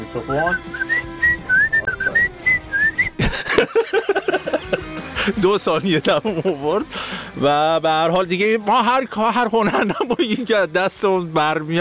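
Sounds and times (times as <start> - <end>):
speech: 0.1 - 0.9, 5.2 - 11.8
person whistling a note that slides upward: 0.4 - 3.2
laughter: 0.7 - 6.9, 9.6 - 10.6.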